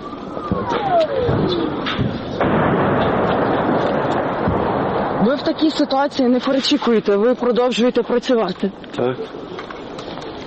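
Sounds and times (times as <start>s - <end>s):
steady roar of outdoor noise: 0.0s - 5.8s
Grad multiple rocket launcher fire in a dense barrage of booms and blasts: 0.5s - 5.7s
speech: 0.6s - 2.8s, 5.2s - 9.5s.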